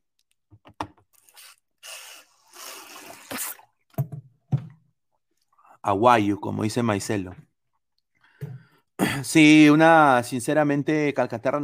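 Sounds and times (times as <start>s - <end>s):
sharp gulping sips from a water jug: 1.2s - 3.8s
plastic water jug knocks and scrapes: 3.9s - 4.8s
speech: 5.8s - 7.5s, 9.3s - 11.6s.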